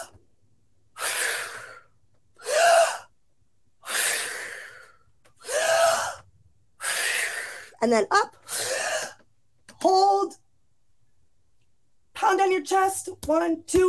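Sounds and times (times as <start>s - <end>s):
deep breaths in a breath-work exercise: 0.9s - 3.1s, 3.8s - 7.8s, 8.3s - 9.3s
speech: 7.8s - 8.6s, 12.7s - 13.8s.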